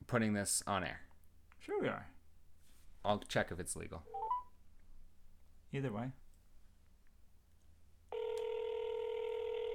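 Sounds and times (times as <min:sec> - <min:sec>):
speech: 0:00.1 - 0:02.1, 0:03.0 - 0:04.2, 0:05.7 - 0:06.2
loud steady telephone dialing tone: 0:08.1 - 0:09.7.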